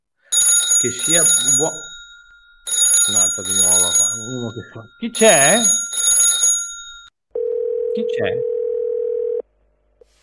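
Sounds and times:
telephone ringing: 0:00.3 - 0:09.4
speech: 0:00.8 - 0:01.9, 0:03.1 - 0:05.9, 0:08.0 - 0:08.5
steady telephone dial tone: 0:07.4 - 0:09.4.

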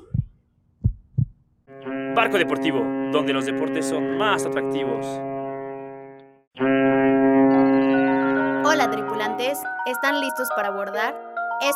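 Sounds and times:
deep heartbeat thumps: 0:00.0 - 0:01.4
bright sustained musical tone: 0:01.7 - 0:11.7
speech: 0:02.2 - 0:05.3, 0:09.4 - 0:11.7.

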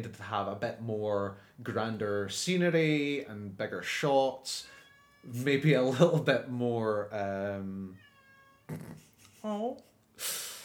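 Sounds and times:
speech: 0:00.0 - 0:08.1, 0:08.7 - 0:10.5
cat meowing loudly outside a door: 0:04.6 - 0:05.6, 0:07.8 - 0:09.0.

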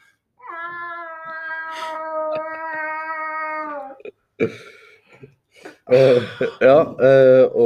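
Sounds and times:
person imitating a cat meowing: 0:00.4 - 0:04.1
speech: 0:04.4 - 0:07.6.

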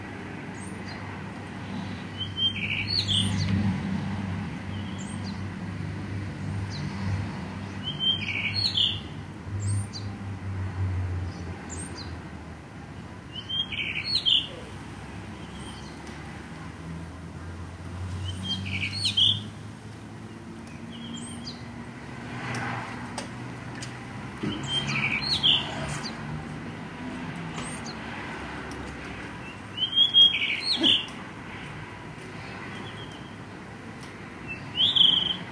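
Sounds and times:
low rumble of passing traffic: 0:00.0 - 0:35.5
birds calling on a clear spring day: 0:00.6 - 0:03.6, 0:07.6 - 0:10.2, 0:12.9 - 0:16.3, 0:18.1 - 0:21.9, 0:23.8 - 0:35.5.

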